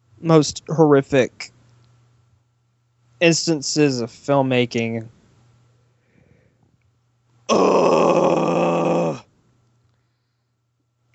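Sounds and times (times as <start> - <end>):
speech: 0.2 - 1.5, 3.2 - 5.2, 7.5 - 8.0
massive groan of discontent from a human voice: 7.5 - 9.3.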